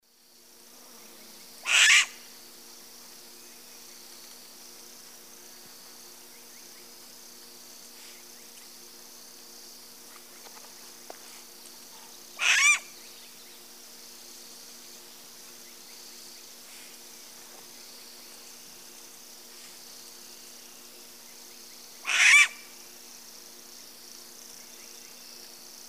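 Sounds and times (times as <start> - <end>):
pair of Asio clamator owls giving alarm calls in the Eastern Lowlands of South America: 1.6 - 2.3, 12.4 - 13.0, 22.0 - 22.7.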